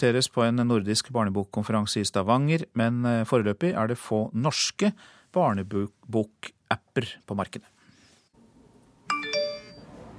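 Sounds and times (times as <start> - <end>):
speech: 0.0 - 7.8
phone text message alert two-note electronic chime in an interactive children's book: 9.1 - 10.0.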